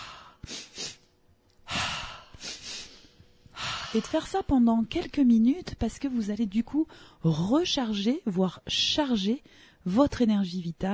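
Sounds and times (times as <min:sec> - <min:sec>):
longer audible exhale through the mouth: 0:00.0 - 0:01.0, 0:01.7 - 0:04.0
quick sniffs in through the nose: 0:00.0 - 0:01.0, 0:02.4 - 0:03.1
speech: 0:03.9 - 0:10.9.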